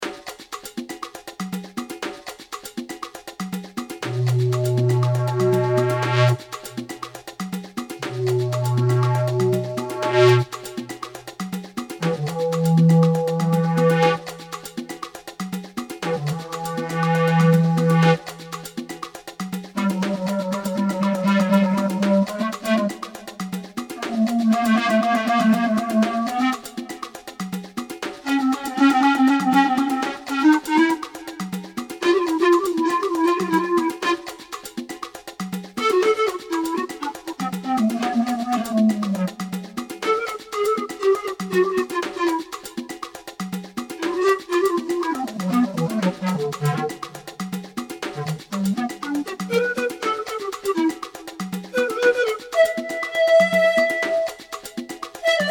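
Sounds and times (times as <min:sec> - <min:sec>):
square wave pan flute: 0:04.1 - 0:55.4.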